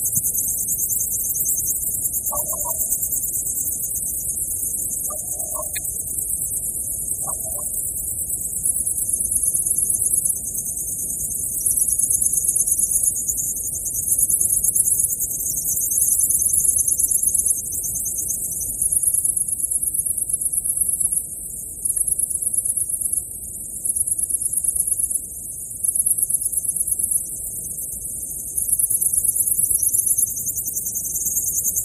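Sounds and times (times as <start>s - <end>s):
insects buzzing and trilling on a karst midsummer night in Krajna vas Slovenia: 0.0s - 31.8s
brief soft chirps: 2.2s - 3.2s, 4.8s - 6.3s, 7.1s - 7.8s.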